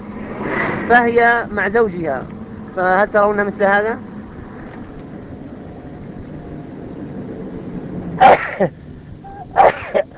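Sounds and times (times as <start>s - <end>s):
speech: 0.9s - 4.1s, 8.2s - 8.8s
person sneezing: 9.4s - 10.1s.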